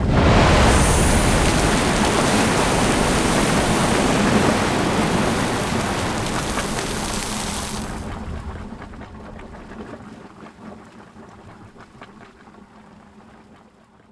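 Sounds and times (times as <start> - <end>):
geyser erupting: 0.0 - 10.4.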